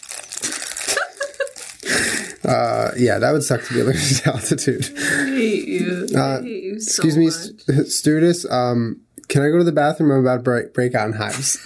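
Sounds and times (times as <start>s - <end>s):
toilet paper being torn and crumpled: 0.0s - 3.2s
laughter: 0.9s - 1.6s, 3.4s - 6.1s
speech: 2.4s - 11.6s.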